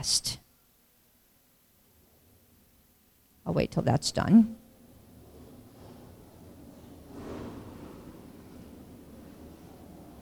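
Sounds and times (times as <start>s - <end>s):
speech: 0.0s - 0.4s, 3.5s - 4.6s
motorcycles passing outdoors: 4.8s - 10.2s.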